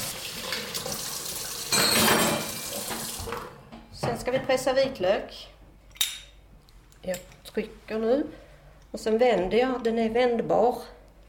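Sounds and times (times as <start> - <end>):
running tap water rinsing sticky kitchen utensils: 0.0 - 3.6
metal tools and dishes clinking in a sink: 1.7 - 3.1
speech: 4.2 - 5.6, 7.0 - 11.0.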